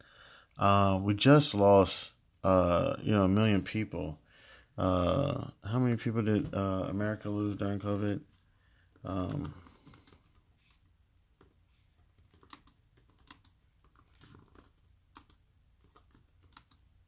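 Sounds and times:
speech: 0.6s - 4.2s, 4.8s - 8.3s, 9.0s - 9.7s
typing on a computer keyboard: 9.2s - 10.8s, 11.4s - 16.8s.

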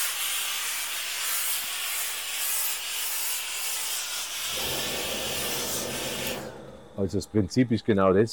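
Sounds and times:
steam iron hissing as it steams fabric: 0.0s - 7.2s
deep rumbling scraping: 4.5s - 7.8s
speech: 7.0s - 8.3s.

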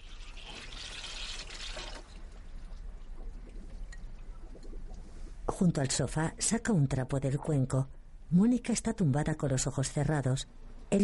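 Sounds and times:
water pouring and splashing in a small kitchen sink aboard a boat: 0.0s - 3.8s
speech: 5.6s - 11.0s.

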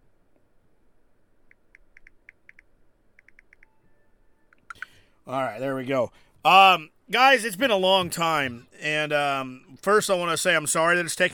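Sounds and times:
quiet hiss: 0.0s - 11.3s
computer keyboard typing a message: 1.5s - 3.8s, 4.5s - 5.0s
speech: 5.3s - 11.3s.

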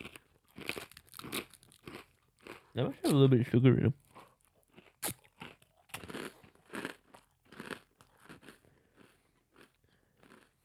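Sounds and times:
person crunching and chewing a fortune cookie: 0.0s - 3.3s, 4.3s - 10.6s
speech: 2.8s - 4.0s.

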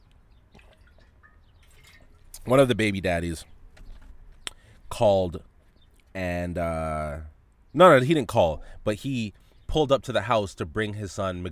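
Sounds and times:
soft drips and trickles of water being poured or sipped: 0.0s - 4.8s
low steady hum: 0.0s - 11.5s
speech: 2.4s - 3.6s, 5.0s - 5.5s, 6.1s - 11.5s.

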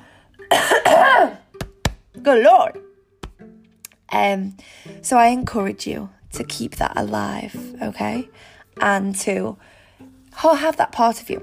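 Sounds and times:
cough: 0.5s - 1.4s
speech: 2.2s - 2.8s, 4.1s - 9.8s, 10.4s - 11.4s.

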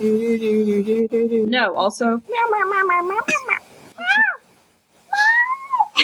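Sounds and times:
speech: 0.0s - 4.3s
cat meowing: 2.3s - 4.5s, 5.1s - 6.0s.

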